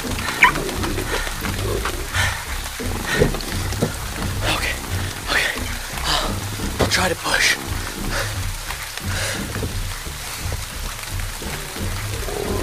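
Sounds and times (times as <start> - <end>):
wolves growling and snarling: 0.0 - 6.6, 11.4 - 12.6
noisy wet-sounding background: 0.0 - 12.6
wolves yelping: 0.3 - 2.0
speech: 7.0 - 7.6.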